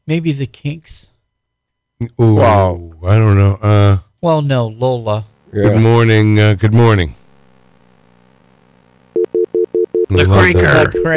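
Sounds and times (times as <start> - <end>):
low hum: 0.0 - 11.1
speech: 0.1 - 1.1, 2.0 - 7.2, 10.1 - 11.1
telephone line tone in short beeps: 9.2 - 11.1.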